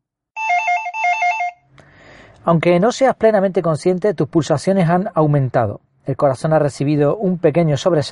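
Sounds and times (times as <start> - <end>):
telephone ringing with electronic trilling tones: 0.4 - 1.6
speech: 2.4 - 8.1.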